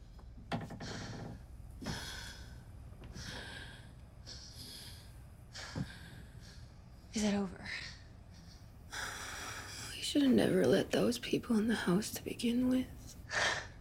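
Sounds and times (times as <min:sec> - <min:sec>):
two people breathing heavily: 0:00.1 - 0:10.0, 0:13.2 - 0:13.7
speech: 0:07.2 - 0:07.8, 0:10.2 - 0:13.0.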